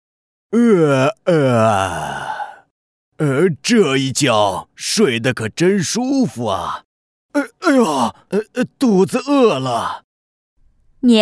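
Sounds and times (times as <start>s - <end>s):
speech: 0.5s - 2.1s, 3.2s - 6.8s, 7.4s - 10.0s, 11.0s - 11.2s
narrator yawning as a horned beast waking up: 0.6s - 2.6s, 7.4s - 8.5s.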